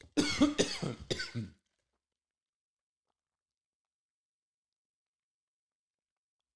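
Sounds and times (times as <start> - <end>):
person coughing harshly: 0.2 - 1.5
rough throat clearing: 0.2 - 1.5.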